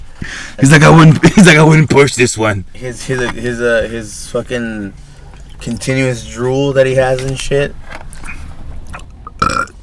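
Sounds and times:
quiet room noise: 0.0s - 9.8s
speech: 0.2s - 8.0s
person burping: 9.2s - 9.8s.

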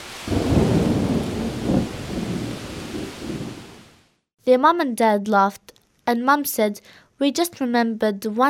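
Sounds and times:
deep heavy thunder rolling in a storm: 0.0s - 4.0s
steady rain falling: 0.0s - 4.1s
speech: 4.5s - 8.4s.

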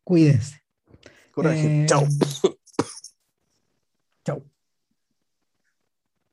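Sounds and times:
speech: 0.1s - 0.6s, 1.4s - 2.9s, 4.2s - 4.5s
raspy coughs: 2.1s - 3.2s.

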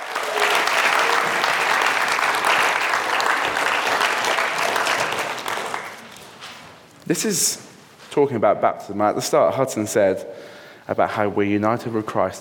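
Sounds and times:
large audience applause: 0.0s - 6.2s
speech: 7.1s - 12.3s.

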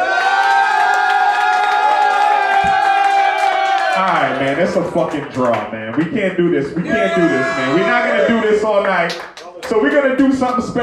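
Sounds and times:
large crowd cheering and roaring for the winner of a battle: 0.0s - 4.8s, 6.8s - 9.1s
speech: 4.4s - 10.8s.

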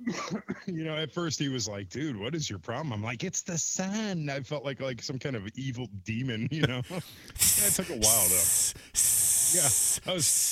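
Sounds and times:
speech: 0.1s - 10.5s
person imitating a cat's hiss: 7.3s - 10.5s.

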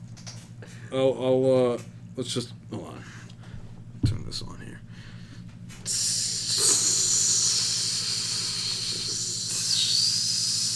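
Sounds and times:
low rumbling hum: 0.0s - 10.7s
speech: 0.9s - 3.2s, 4.3s - 4.8s
sizzling hiss: 5.9s - 10.7s.

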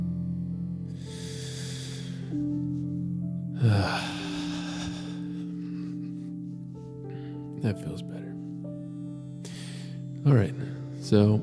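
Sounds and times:
low sustained tones: 0.0s - 11.4s
person taking a deep breath in and letting it out: 1.0s - 2.8s, 3.6s - 7.5s, 9.4s - 11.0s
speech: 3.6s - 4.0s, 7.6s - 8.2s, 10.2s - 11.4s.

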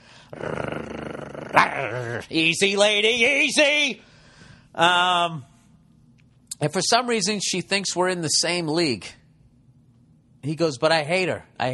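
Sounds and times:
loud throaty growl: 0.2s - 2.3s
speech: 1.8s - 4.1s, 4.8s - 5.5s, 6.6s - 9.2s, 10.4s - 11.7s.

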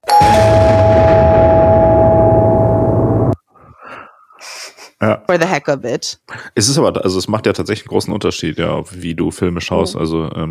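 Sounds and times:
doorbell chime: 0.0s - 3.4s
speech: 5.0s - 10.5s.

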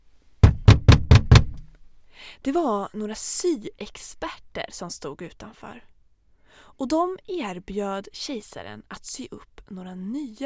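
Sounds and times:
firm knocking on a wooden door: 0.4s - 1.7s
speech: 2.3s - 5.9s, 6.6s - 10.4s.

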